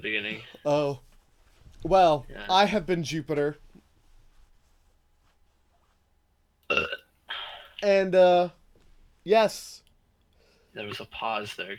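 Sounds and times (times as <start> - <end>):
speech: 0.0 - 1.0, 1.8 - 3.6, 7.8 - 8.6, 9.2 - 9.8, 10.8 - 11.7
loud burp: 6.7 - 7.1
short raspy belch: 6.7 - 7.1.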